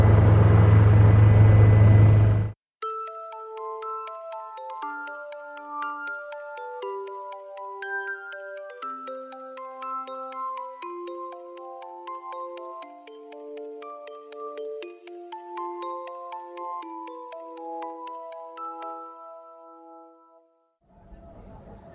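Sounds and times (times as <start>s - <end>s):
aircraft cabin drone while descending to land at a polar ice station: 0.0s - 2.6s
tinkling chime music: 2.8s - 20.4s.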